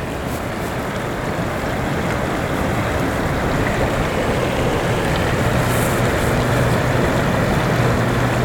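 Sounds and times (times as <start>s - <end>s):
clear mountain stream flowing gently over a high plateau: 0.0s - 8.4s.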